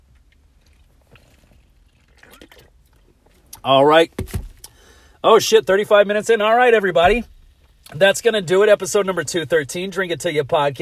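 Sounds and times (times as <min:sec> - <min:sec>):
person sipping and swallowing a drink: 0:00.0 - 0:03.7
speech: 0:03.6 - 0:04.4, 0:05.2 - 0:07.3, 0:07.9 - 0:10.7.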